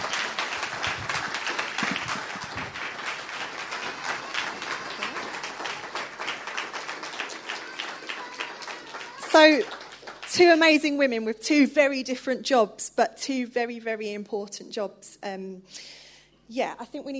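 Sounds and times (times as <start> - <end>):
audience applauding: 0.0 - 10.8
speech: 9.4 - 17.1.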